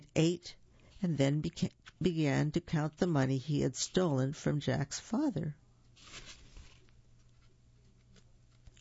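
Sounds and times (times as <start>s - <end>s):
speech: 0.2s - 6.3s
book page turning with a papery swish: 1.7s - 2.1s, 6.0s - 8.8s
faint scratchy rustling: 6.0s - 8.8s.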